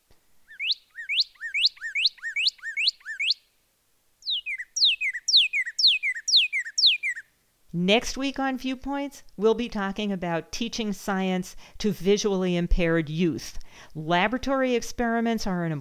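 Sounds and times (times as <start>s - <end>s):
northern cardinal singing whistled phrases: 0.5s - 3.4s, 4.2s - 7.3s
speech: 7.8s - 15.7s.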